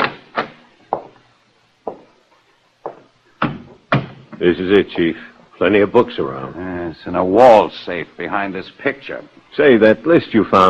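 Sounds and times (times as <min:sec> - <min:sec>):
faint low hum: 0:00.0 - 0:10.6
wooden thumps and rattles of a door being tried and opened: 0:03.4 - 0:04.4
speech: 0:04.4 - 0:10.6.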